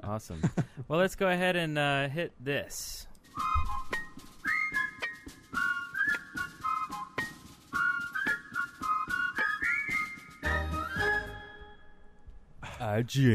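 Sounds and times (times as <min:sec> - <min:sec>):
speech: 0:00.2 - 0:03.1, 0:13.0 - 0:13.3
backing music track with steady percussive beats: 0:03.3 - 0:11.9
whistled melody in intro music: 0:03.3 - 0:12.3.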